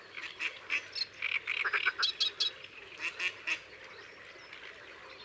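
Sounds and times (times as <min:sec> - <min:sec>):
Eurasian coot calling in Isere: 0:00.1 - 0:03.7.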